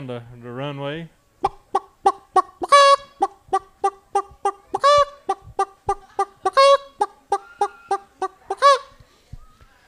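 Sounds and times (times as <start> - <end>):
speech: 0.0 - 1.2
hen cackling after laying an egg: 1.4 - 8.9.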